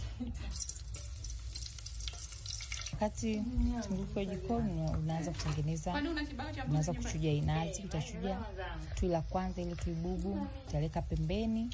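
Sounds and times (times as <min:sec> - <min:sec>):
speech: 0:00.2 - 0:00.8, 0:03.0 - 0:11.7
onion frying in oil in a cooking pot on the stove: 0:00.3 - 0:05.8, 0:09.0 - 0:11.7.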